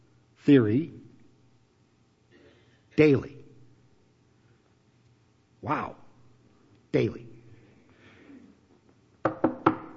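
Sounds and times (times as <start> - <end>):
speech: 0.4 - 1.0, 3.0 - 3.4, 5.6 - 6.0, 6.9 - 7.3
knocking on a wooden podium: 9.2 - 9.9.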